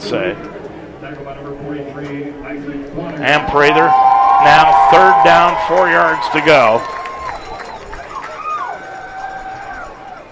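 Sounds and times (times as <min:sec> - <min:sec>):
speech: 0:00.0 - 0:07.0
large American football crowd screaming and roaring at a championship game: 0:03.1 - 0:10.2.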